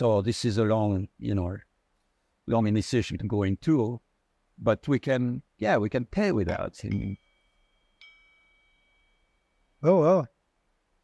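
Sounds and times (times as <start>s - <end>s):
speech: 0.0s - 1.7s, 2.4s - 4.0s, 4.6s - 7.2s, 9.8s - 10.3s
handmade metal object struck like a bell: 6.5s - 9.8s.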